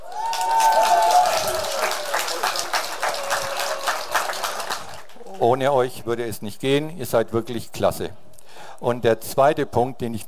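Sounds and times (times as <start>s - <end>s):
applause from a group of people: 0.0s - 5.4s
speech: 5.4s - 8.2s, 8.8s - 10.2s.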